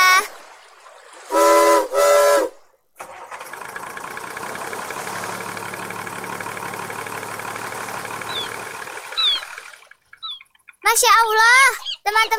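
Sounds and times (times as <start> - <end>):
ship's engine starting and rumbling drone: 0.0 - 11.6
loud harmonic ship whistle blasts: 1.3 - 2.6
faint high chirps: 8.2 - 11.1
speech: 11.0 - 12.3.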